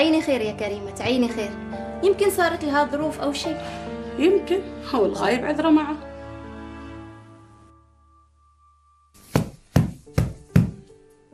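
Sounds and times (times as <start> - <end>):
speech: 0.1 - 6.1
firm knocking on a door: 9.4 - 10.8.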